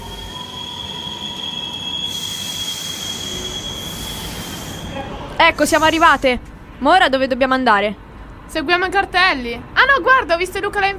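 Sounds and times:
metro train wheels squealing on rails: 0.0 - 6.4
bright hiss: 2.0 - 6.4
speech: 5.4 - 10.9.

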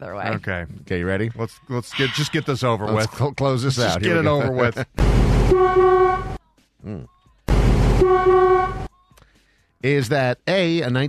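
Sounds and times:
speech: 0.0 - 5.9, 6.8 - 7.2, 8.0 - 8.5, 9.8 - 11.0
voice imitating an old car honking: 5.5 - 7.1, 8.0 - 8.9.

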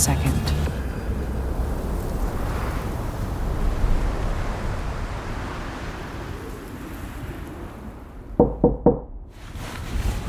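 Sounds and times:
speech: 0.0 - 0.4
steady roar of wind: 1.0 - 9.6
sharp knocks on a wooden door: 8.4 - 9.1.

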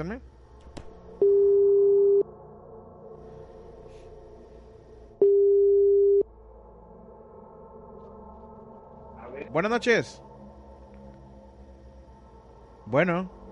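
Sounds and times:
speech: 0.0 - 0.3, 9.5 - 10.3, 12.9 - 13.4
telephone line tone while dialling a call: 1.2 - 2.2, 5.2 - 6.2.

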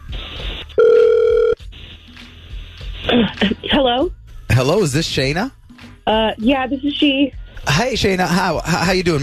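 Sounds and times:
single loud electronic phone ring tone as a call is placed: 0.8 - 1.6
speech: 3.1 - 9.2.

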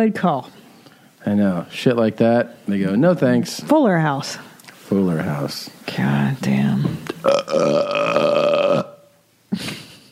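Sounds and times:
speech: 0.0 - 0.6, 1.2 - 8.8
long loud drawn-out burp: 7.2 - 9.1
throaty vocal sound: 7.2 - 9.1.

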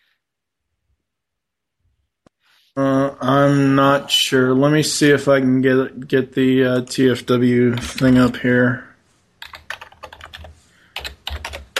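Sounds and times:
speech: 2.8 - 8.9
typing on a computer keyboard: 9.4 - 11.7.

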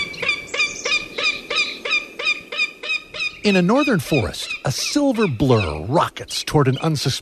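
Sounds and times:
northern goshawk calling in harsh nasal cackling notes: 0.0 - 5.9
speech: 3.4 - 7.2.

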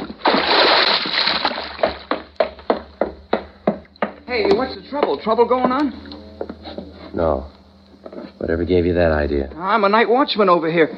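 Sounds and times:
heavy body splashing into water: 0.0 - 2.2
speech: 4.3 - 7.6, 8.4 - 10.9.

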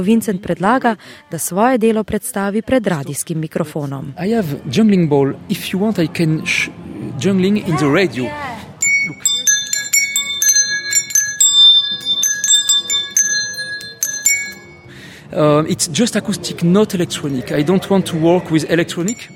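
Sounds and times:
speech: 0.0 - 9.3, 15.3 - 19.3
bell-like chimes from acoustic sound-making juggling balls being juggled: 8.8 - 14.9, 19.0 - 19.3.

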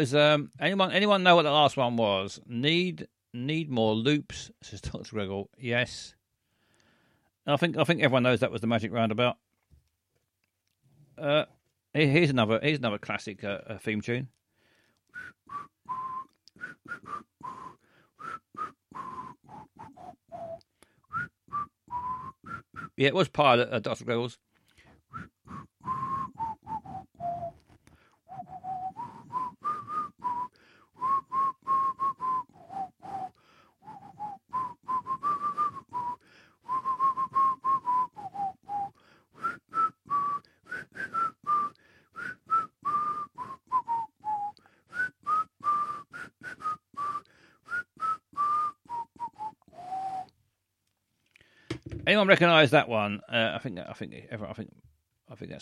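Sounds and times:
speech: 0.0 - 6.2, 7.4 - 9.4, 11.2 - 14.4, 18.6 - 24.5, 52.1 - 55.6
person whistling a catchy pop-style tune: 15.0 - 23.0, 25.1 - 50.4.

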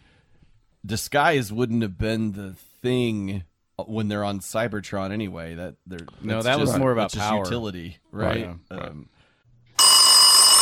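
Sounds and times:
speech: 0.9 - 9.2
telephone bell ringing with a harsh metallic trill: 9.8 - 10.6.

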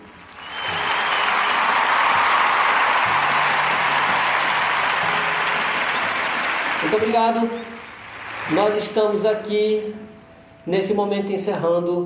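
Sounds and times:
audience applause: 0.0 - 9.5
speech: 6.9 - 7.8, 8.5 - 10.0, 10.6 - 12.0.

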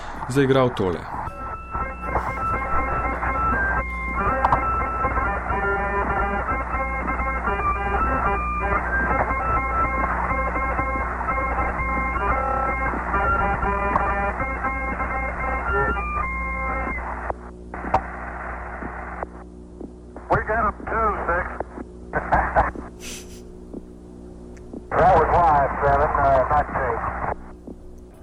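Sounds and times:
constant low hum and static on a radio channel: 0.0 - 28.2
small eight-tone harmonica melody played aboard a spacecraft over radio: 0.1 - 16.8
speech: 0.3 - 1.2
laughter: 2.1 - 3.2.

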